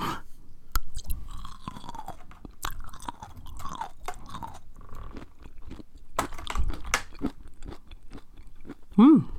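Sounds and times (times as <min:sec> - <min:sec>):
wet chewing of caper berries with crunchy bites: 0:00.7 - 0:09.0.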